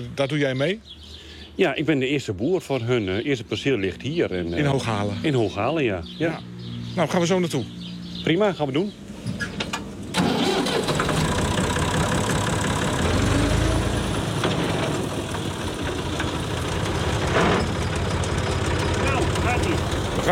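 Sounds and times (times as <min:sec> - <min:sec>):
speech: 0:00.0 - 0:09.4
tractor pulling a sprayer across a farm field in Hooghalen: 0:09.7 - 0:20.2.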